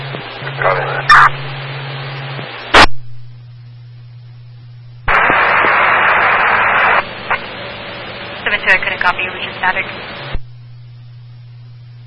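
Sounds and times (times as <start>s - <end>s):
garbled radio static with unintelligible transmission: 0.0s - 1.6s, 2.2s - 3.0s, 5.1s - 7.6s, 8.4s - 10.4s
low electronic hum: 0.0s - 12.0s
speech: 0.5s - 1.6s, 9.6s - 10.3s.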